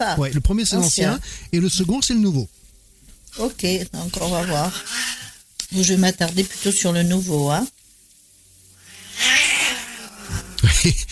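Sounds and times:
speech: 0.0 - 2.6, 3.4 - 7.8, 10.8 - 11.1
cats fighting and caterwauling: 4.3 - 5.4, 8.8 - 10.6
laughter: 10.3 - 11.1.

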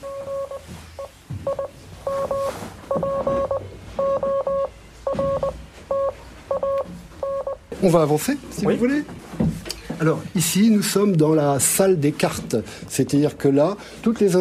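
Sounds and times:
Morse code beeping from radio equipment at a switchboard operator's post: 0.0 - 7.6
speech: 7.8 - 9.2, 10.0 - 14.4.

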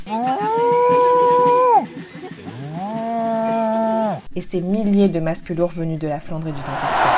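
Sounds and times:
cow mooing: 0.0 - 4.3
speech: 4.4 - 7.0.

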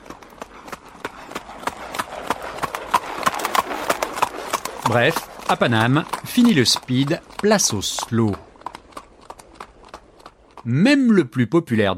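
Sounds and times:
hooves of a horse-drawn carriage trotting on hard pavement: 0.0 - 10.7
speech: 4.9 - 8.5, 10.6 - 11.9.

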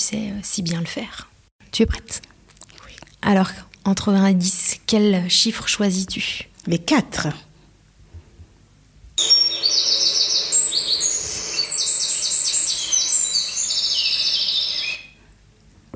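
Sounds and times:
speech: 0.1 - 2.3, 3.2 - 7.5
birds singing outdoors in nature: 9.2 - 15.2.

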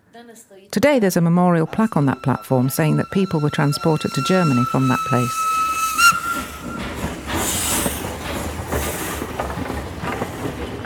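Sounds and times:
speech: 0.2 - 5.8
steam train rumbling while pulling away: 0.8 - 10.8
steam train whistle: 1.7 - 10.2
rhythmic clatter of steam train wheels: 3.0 - 10.8.

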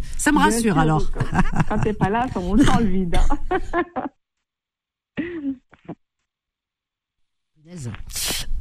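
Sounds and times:
speech: 0.2 - 4.2, 7.7 - 8.2
laughter: 0.8 - 4.2
harsh noisy rough cough: 2.4 - 4.0, 5.2 - 6.0
short vocal bursts: 7.7 - 8.5.

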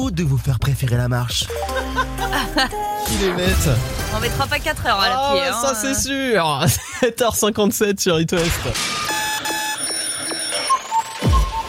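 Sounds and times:
speech: 0.1 - 9.1
laughter: 1.5 - 3.4, 6.5 - 7.3
alarm clock ringing with electronic tones: 8.8 - 11.6.

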